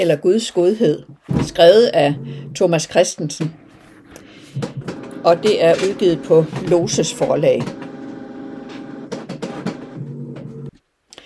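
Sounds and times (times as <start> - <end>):
speech: 0.0 - 3.6, 4.6 - 7.8
printer whirring with mechanical hum: 3.5 - 10.8
printer clicks and clacks: 4.2 - 10.7.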